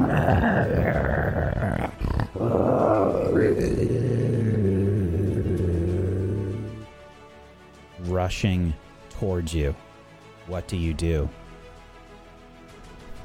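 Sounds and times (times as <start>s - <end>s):
creature growling and snarling: 0.0s - 6.9s
speech: 0.3s - 0.8s, 8.3s - 9.9s, 10.5s - 11.4s.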